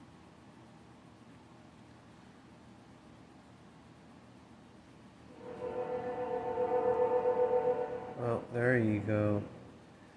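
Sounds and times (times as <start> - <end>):
train horn-like tonal drones: 5.3 - 9.3
train rumbling past: 5.3 - 9.9.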